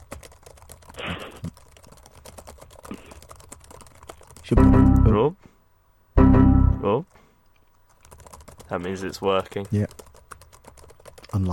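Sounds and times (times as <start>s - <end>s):
typing on a computer keyboard: 0.0s - 4.6s, 7.6s - 11.5s
speech: 4.5s - 5.5s, 6.8s - 7.2s, 8.7s - 9.9s, 11.3s - 11.5s.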